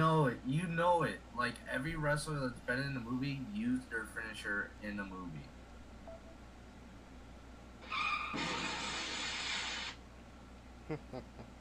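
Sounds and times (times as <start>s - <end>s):
speech: 0.2s - 5.6s, 10.9s - 11.6s
car crash: 7.8s - 9.9s
tire screech: 7.8s - 9.9s.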